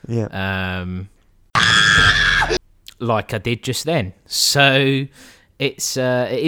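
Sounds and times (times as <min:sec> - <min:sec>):
speech: 0:00.1 - 0:01.2, 0:01.8 - 0:06.4
harsher noisier shriek: 0:01.6 - 0:02.6
loud human scream: 0:01.6 - 0:02.6.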